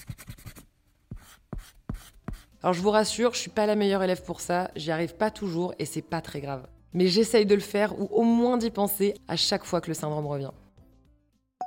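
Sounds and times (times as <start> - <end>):
pencil scratching across the paper of a small notebook: 0.0 - 2.6
speech: 2.6 - 10.6.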